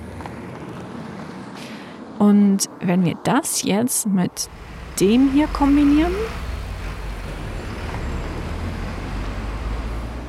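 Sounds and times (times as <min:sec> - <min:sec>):
dense road traffic of passing vehicles: 0:00.0 - 0:10.2
speech: 0:02.2 - 0:06.4.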